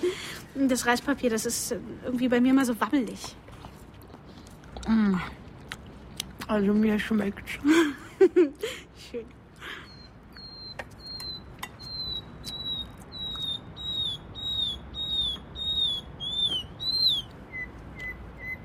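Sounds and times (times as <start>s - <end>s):
speech: 0.6s - 3.4s, 4.9s - 5.4s, 6.5s - 9.4s
nightingale singing: 9.9s - 18.6s.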